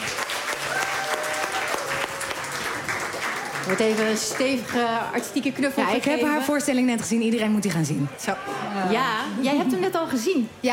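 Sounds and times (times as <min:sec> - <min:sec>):
studio audience applauding as a guest arrives: 0:00.0 - 0:05.0
speech: 0:03.7 - 0:10.7.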